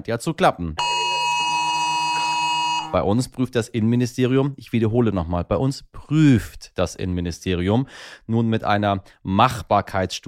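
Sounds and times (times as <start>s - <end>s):
speech: 0.0s - 1.2s, 2.9s - 10.2s
mobile phone emergency alert tone: 0.8s - 3.0s.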